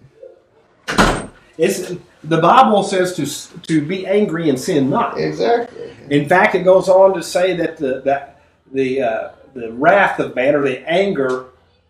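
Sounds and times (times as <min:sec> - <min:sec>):
door being pulled shut with a heavy thud: 0:00.8 - 0:01.4
speech: 0:01.6 - 0:11.5.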